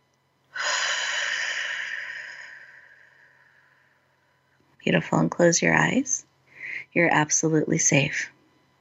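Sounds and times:
deep airy belly breath during a mindful breathing exercise: 0.5s - 4.3s
speech: 4.8s - 6.3s, 6.9s - 8.4s.

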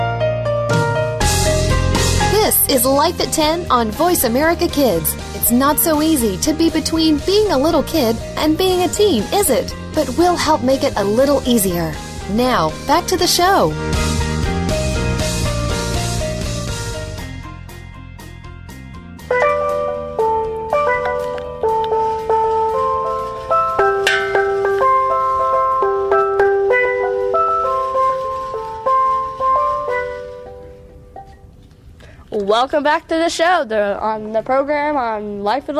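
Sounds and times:
steel drum playing a bright ringing melody: 0.8s - 17.4s, 19.1s - 31.6s
speech: 2.7s - 14.1s, 32.6s - 35.7s.

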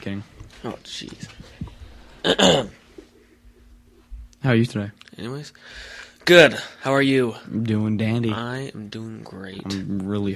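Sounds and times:
speech: 0.0s - 1.4s, 2.2s - 2.8s, 4.4s - 10.3s
short loud burp: 2.2s - 2.7s.

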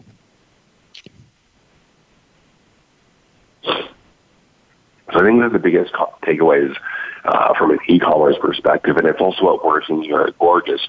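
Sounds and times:
person clearing throat on a call: 3.6s - 4.0s
speech: 5.2s - 10.8s.

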